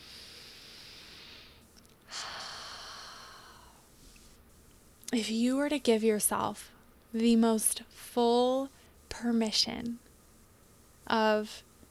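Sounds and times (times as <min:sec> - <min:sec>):
deep breath drawn into the belly: 0:00.0 - 0:04.4
hiss: 0:00.0 - 0:11.8
speech: 0:05.1 - 0:10.0, 0:11.1 - 0:11.7.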